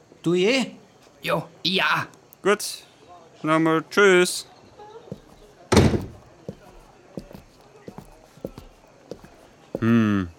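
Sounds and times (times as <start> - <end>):
speech: 0.2 - 4.5
door slamming: 5.7 - 6.2.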